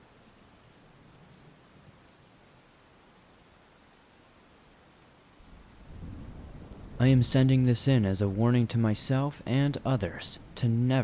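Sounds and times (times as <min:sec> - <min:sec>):
steady rain: 0:00.0 - 0:11.0
deep low rumble of thunder: 0:05.4 - 0:11.0
speech: 0:07.0 - 0:11.0.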